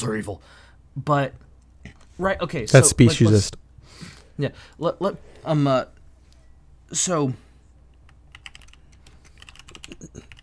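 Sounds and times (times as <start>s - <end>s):
speech: 0.0s - 1.5s, 2.2s - 6.0s, 6.9s - 7.4s, 10.0s - 10.3s
typing on a computer keyboard: 8.1s - 10.4s.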